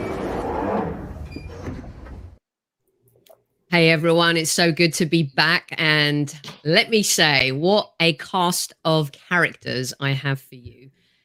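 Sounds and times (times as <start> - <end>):
underground train doors sliding and clunking: 0.2 - 2.4
speech: 3.8 - 11.0.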